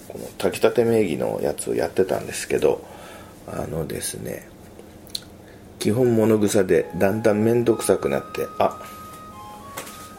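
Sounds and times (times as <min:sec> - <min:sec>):
speech: 0:00.1 - 0:04.5, 0:05.8 - 0:09.0
home clock chime playing a soft electronic melody: 0:06.7 - 0:10.1.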